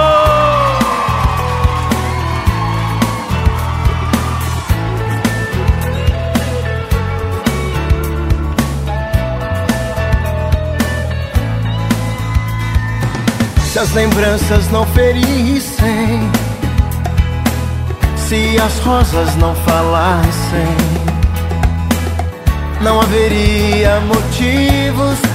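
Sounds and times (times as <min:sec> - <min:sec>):
concert audience whooping, yelling and cheering: 0:00.0 - 0:14.4
live music with steady pulsing bass beat: 0:00.0 - 0:25.3
speech: 0:13.9 - 0:16.3, 0:18.3 - 0:21.0, 0:22.8 - 0:25.3.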